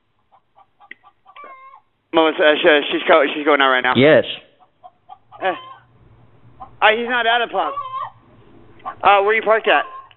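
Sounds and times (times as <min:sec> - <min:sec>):
chicken clucking outdoors: 0:00.1 - 0:01.9, 0:04.6 - 0:10.1
speech: 0:02.2 - 0:04.4, 0:05.4 - 0:05.7, 0:06.8 - 0:07.8, 0:08.8 - 0:10.0.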